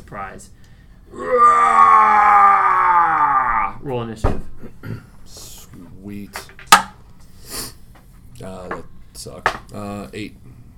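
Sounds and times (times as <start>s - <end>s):
speech: 0.1s - 2.5s, 3.8s - 6.5s, 9.2s - 10.5s
person voicing a yeti's scream: 1.1s - 3.8s.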